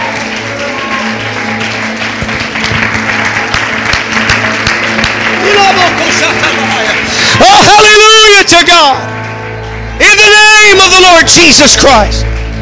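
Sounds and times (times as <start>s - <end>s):
audience clapping hands: 0.0s - 8.1s
speech: 8.4s - 9.2s, 10.0s - 12.3s.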